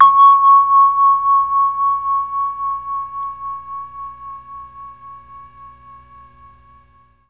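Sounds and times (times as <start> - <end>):
C#4 vibraphone note on a Mellotron MKII: 0.0 - 4.0.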